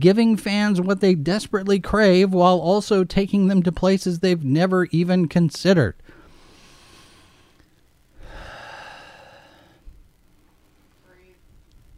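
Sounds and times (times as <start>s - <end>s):
speech: 0.0s - 6.1s
heavy breathing into the microphone: 6.0s - 10.0s.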